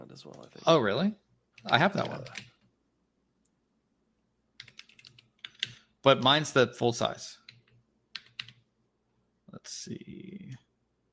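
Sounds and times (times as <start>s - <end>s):
speech: 0.2s - 2.5s, 6.0s - 7.4s, 9.6s - 10.6s
computer keyboard typing: 1.6s - 2.6s, 4.6s - 5.8s, 7.4s - 8.6s.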